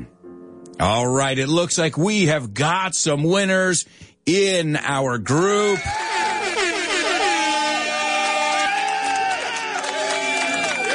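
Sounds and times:
speech: 0.8 - 6.2
faint crowd noise: 5.8 - 10.9
loud sustained air horn blasts: 6.0 - 8.8.

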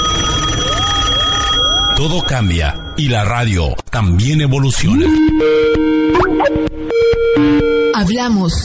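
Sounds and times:
old home telephone ringing: 0.0 - 2.6
speech: 2.0 - 8.6.

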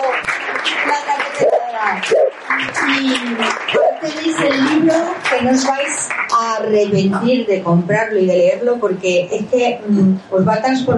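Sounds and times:
audience applauding a woman writer at a cultural event: 0.0 - 7.4
speech: 2.9 - 10.9.

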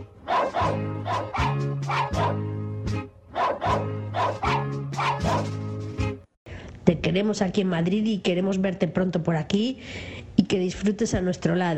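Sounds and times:
small pet dogs barking and yipping as a birthday greeting: 0.3 - 2.5, 3.4 - 5.6
speech: 6.9 - 11.7.

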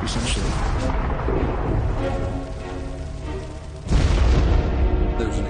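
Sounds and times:
explosion boom of an airship crashing into a windmill: 0.2 - 2.8, 3.8 - 5.4.

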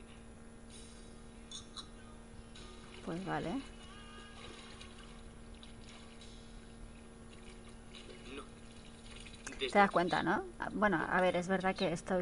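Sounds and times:
water poured onto someone's back trickling and splashing: 2.6 - 9.7
speech: 3.1 - 3.8, 9.6 - 12.1.

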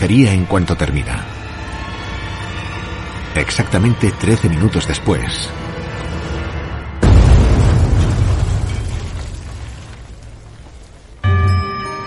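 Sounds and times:
speech: 0.0 - 1.4, 3.4 - 5.6
bomb blast in a beer hall destroying a main pillar of the building: 7.0 - 10.8.

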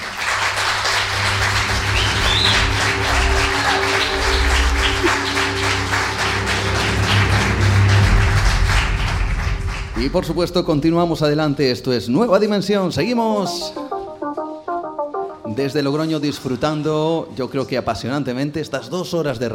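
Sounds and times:
audience at a live radio show in Logroño applauding: 0.0 - 10.4
speech: 10.0 - 14.0, 15.5 - 19.5.

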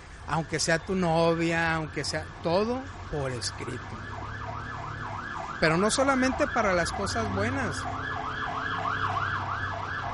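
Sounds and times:
low traffic rumble: 0.0 - 10.1
speech: 0.3 - 4.2, 5.6 - 8.1
ambulance siren wailing in rapid rising-and-falling yelp: 1.3 - 10.1.

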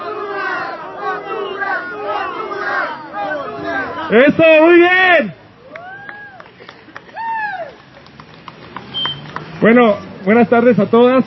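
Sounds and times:
crowd of migrants at a demonstration shouting a chant: 0.0 - 4.4
speech: 4.1 - 5.4, 9.6 - 11.2.

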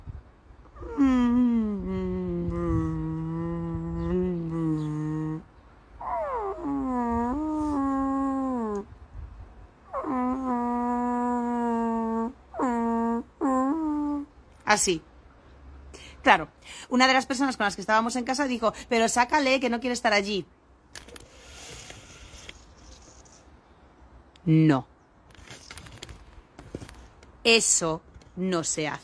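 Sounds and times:
person imitating a dog howling in a crate: 0.8 - 5.4, 6.0 - 8.9, 9.9 - 14.3
speech: 14.7 - 15.1, 16.2 - 20.6, 24.5 - 24.9, 27.4 - 29.0.

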